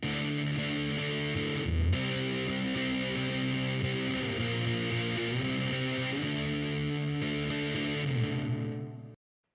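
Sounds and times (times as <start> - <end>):
heavily distorted electric guitar through reverb and fuzz drive pedal: 0.0 - 9.2.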